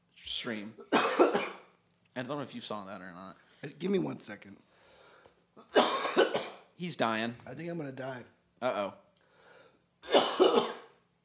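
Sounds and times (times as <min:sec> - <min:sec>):
speech: 0:00.4 - 0:00.9, 0:02.2 - 0:04.7, 0:06.8 - 0:09.0
person coughing and clearing throat: 0:00.8 - 0:01.7, 0:05.6 - 0:06.7, 0:10.0 - 0:11.0.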